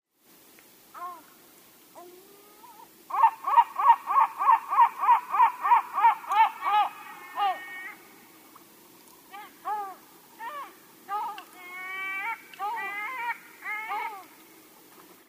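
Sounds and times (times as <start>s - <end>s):
yellow-legged gull Larus michahellis calling: 2.0s - 8.2s, 9.3s - 14.5s.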